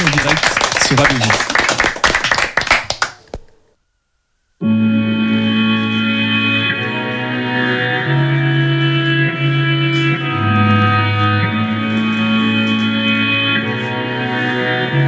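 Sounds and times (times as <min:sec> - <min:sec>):
audience applause: 0:00.0 - 0:03.5
music with held tones: 0:04.6 - 0:15.0.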